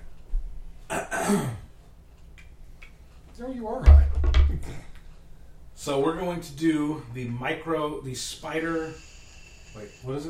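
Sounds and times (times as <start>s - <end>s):
speech: 0.9s - 1.6s, 3.4s - 4.9s, 5.8s - 9.1s, 9.8s - 10.2s
person giving a short forced cough into a raised hand: 0.9s - 1.7s.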